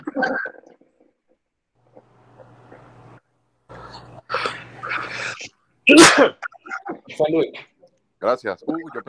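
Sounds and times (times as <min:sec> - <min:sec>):
speech: 0:00.2 - 0:00.4, 0:05.9 - 0:06.4, 0:07.1 - 0:09.0
person sneezing loudly: 0:04.3 - 0:06.5.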